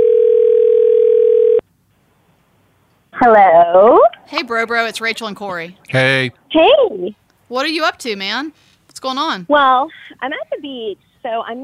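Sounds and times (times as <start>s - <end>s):
telephone dial tone of an outgoing call: 0.0s - 1.6s
speech: 3.2s - 11.6s.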